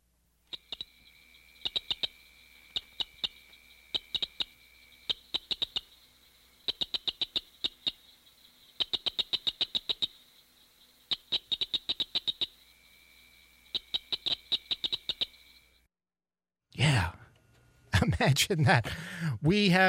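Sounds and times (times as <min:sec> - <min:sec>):
cricket frog Acris grillus dorsalis calling with dry clicks: 0:00.4 - 0:15.8
speech: 0:18.2 - 0:19.8.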